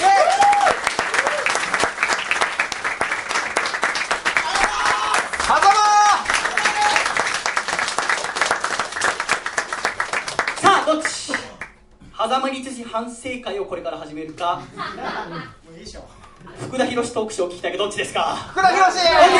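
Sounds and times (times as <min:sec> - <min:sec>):
crowd whooping or cheering: 0:00.0 - 0:01.9, 0:04.2 - 0:07.4
audience applauding: 0:00.0 - 0:11.7
speech: 0:12.4 - 0:16.0, 0:16.6 - 0:19.3
laughter: 0:14.6 - 0:15.6, 0:18.6 - 0:19.3.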